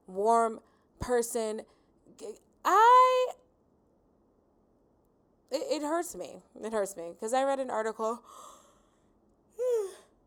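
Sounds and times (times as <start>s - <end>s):
speech: 0.1s - 3.4s, 5.5s - 8.6s
breathy yawn: 9.6s - 10.1s.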